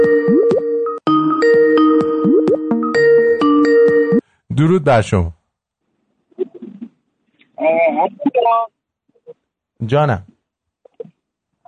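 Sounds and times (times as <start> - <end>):
phone ringtone with electronic melody of chiming tones: 0.0 - 4.2
speech: 4.6 - 5.4, 7.6 - 8.7, 9.8 - 10.3.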